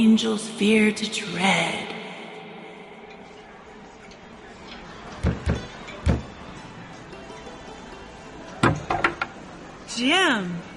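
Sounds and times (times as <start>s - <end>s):
speech: 0.0s - 2.0s, 10.0s - 10.7s
knocking on the door of a home: 5.2s - 6.3s, 8.6s - 9.3s.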